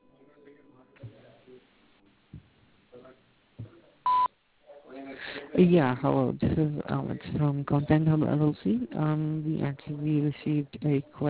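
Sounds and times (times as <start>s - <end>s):
sharp answering machine beep: 4.1s - 4.3s
speech: 5.6s - 11.2s.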